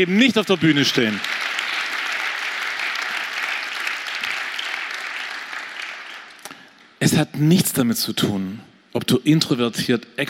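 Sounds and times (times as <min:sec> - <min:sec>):
speech: 0:00.0 - 0:01.4, 0:07.0 - 0:10.2
large audience applauding: 0:00.0 - 0:06.7.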